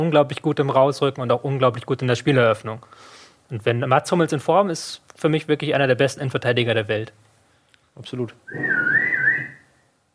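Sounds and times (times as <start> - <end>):
speech: 0.0 - 7.2, 8.0 - 8.9
half-time whistle blown weakly: 8.5 - 9.8.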